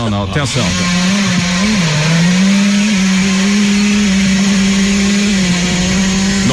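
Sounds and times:
speech: 0.0 - 1.9
person imitating a two-stroke motorcycle engine with their mouth: 0.0 - 6.5.

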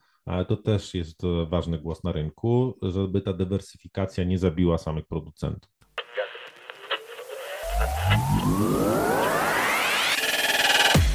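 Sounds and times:
speech: 0.3 - 5.8
radio interference clicks and crackle: 6.0 - 11.0
droning buzz with upward-sweeping whistling tones: 7.7 - 11.0.

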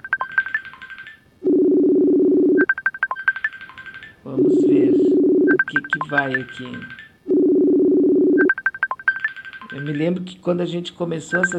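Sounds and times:
steady low telephone tone humming: 0.0 - 3.6, 4.3 - 9.8
bright touch-tone dialing beeps: 0.0 - 10.0, 11.3 - 11.5
speech: 5.7 - 7.0, 9.7 - 11.5.

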